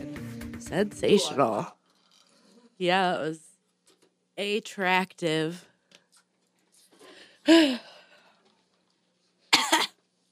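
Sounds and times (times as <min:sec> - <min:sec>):
speech: 0:00.7 - 0:01.8, 0:02.8 - 0:03.5, 0:04.4 - 0:05.7, 0:07.4 - 0:07.9
person coughing with a wheezy tail: 0:09.5 - 0:10.0.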